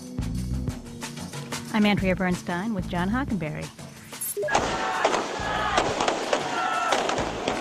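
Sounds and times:
speech: 0:01.8 - 0:03.8
firecrackers exploding during street celebration: 0:04.5 - 0:07.5
noisy street crowd: 0:04.5 - 0:07.5.

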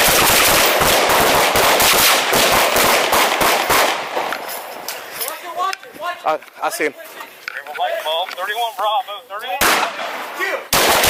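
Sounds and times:
gunfire at a site during a reported contact: 0:00.0 - 0:04.3, 0:09.6 - 0:11.0
speech: 0:06.3 - 0:07.1, 0:08.4 - 0:10.6.

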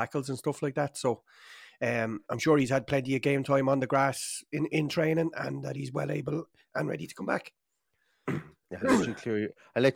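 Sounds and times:
speech: 0:00.0 - 0:07.6, 0:08.2 - 0:09.9
person clearing throat in rough gravelly bursts: 0:08.3 - 0:09.3
short voiced grunts and hums: 0:08.3 - 0:09.3.

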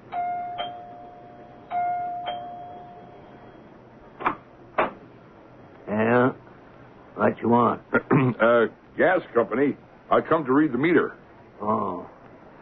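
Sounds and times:
two-tone doorbell chiming: 0:00.1 - 0:03.7
speech: 0:07.2 - 0:12.1.

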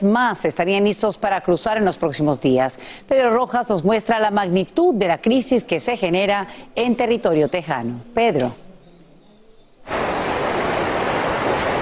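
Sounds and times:
speech: 0:00.0 - 0:08.6
Rio Bravo rushing over a dam between Ciudad Acuña Mexico and Del Rio Texas: 0:09.9 - 0:11.8.

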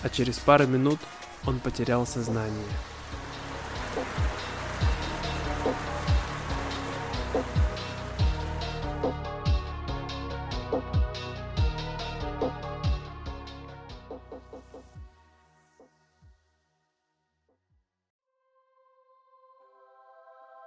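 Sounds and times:
speech: 0:00.0 - 0:03.0
steady rain falling in a forest: 0:01.3 - 0:09.0
rhythmic low thumping beat: 0:02.7 - 0:15.1.

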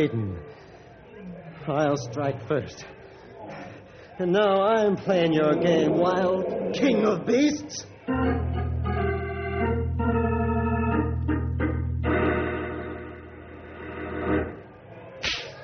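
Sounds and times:
speech: 0:00.0 - 0:00.6, 0:01.6 - 0:03.0, 0:04.2 - 0:08.5
sustained music with held brassy tones: 0:05.4 - 0:14.6
whip cracking: 0:15.2 - 0:15.6.

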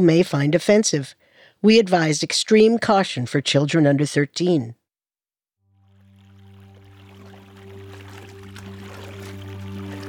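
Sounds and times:
speech: 0:00.0 - 0:04.8
low sustained drone humming: 0:05.7 - 0:10.0
Mississippi River water flowing and lapping around a canoe: 0:06.2 - 0:10.0.

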